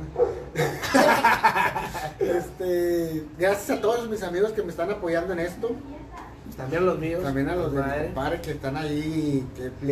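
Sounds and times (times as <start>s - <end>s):
female dog barking in yappy bursts: 0.1s - 0.6s
laughter: 0.5s - 2.6s
speech: 2.2s - 9.9s.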